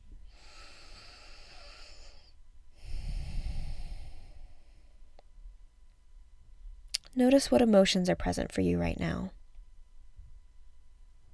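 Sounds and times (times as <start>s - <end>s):
deep breath during a guided meditation practice: 0.2s - 5.1s
speech: 7.2s - 9.4s.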